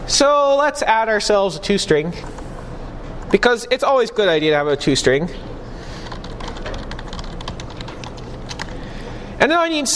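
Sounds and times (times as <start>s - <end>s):
low hum: 0.0s - 9.9s
speech: 0.1s - 2.4s, 3.3s - 5.5s, 9.4s - 9.9s
rapid typing on a computer keyboard while writing program code: 6.0s - 8.8s.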